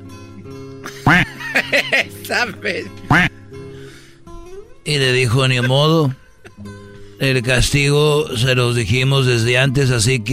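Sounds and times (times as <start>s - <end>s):
speech: 0.5s - 3.4s, 4.9s - 10.3s
laughter: 0.9s - 3.3s, 5.4s - 6.1s
voice imitating duck quacks: 1.0s - 3.3s.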